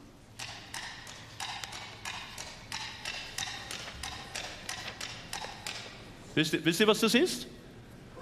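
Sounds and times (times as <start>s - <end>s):
coconut shells knocked together imitating horse hooves: 0.4s - 6.0s
speech: 6.4s - 7.6s.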